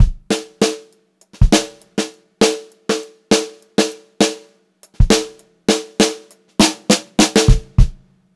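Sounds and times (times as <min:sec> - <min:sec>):
drum fill: 0:00.0 - 0:00.8, 0:01.4 - 0:02.0, 0:04.9 - 0:08.0
funk groove drum loops: 0:00.0 - 0:08.1.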